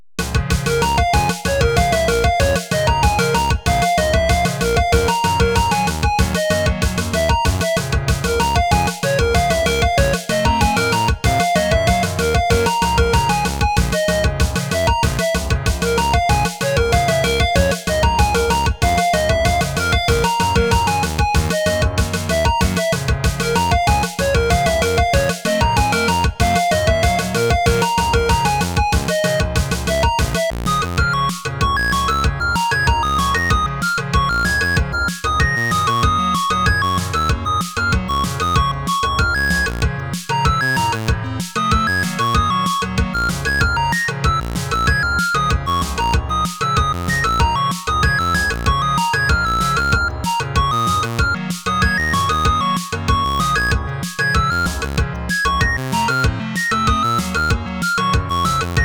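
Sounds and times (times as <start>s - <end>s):
blues in B flat minor: 0.2s - 58.8s.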